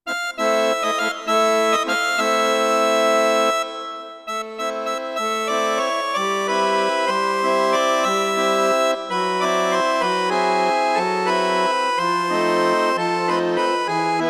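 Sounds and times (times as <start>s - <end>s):
tango chord: 0.1s - 14.2s.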